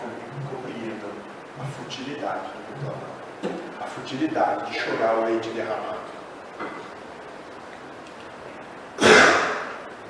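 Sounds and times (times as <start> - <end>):
speech: 1.6 - 6.2
sneeze: 9.0 - 9.8.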